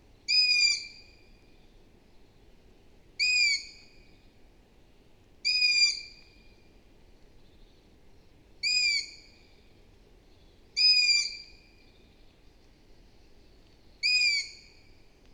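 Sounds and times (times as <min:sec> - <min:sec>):
low steady hiss: 0:00.0 - 0:15.3
long-eared owl Asio otus calling: 0:03.2 - 0:03.8, 0:05.5 - 0:06.1, 0:08.6 - 0:09.3, 0:10.8 - 0:11.5, 0:14.0 - 0:14.8.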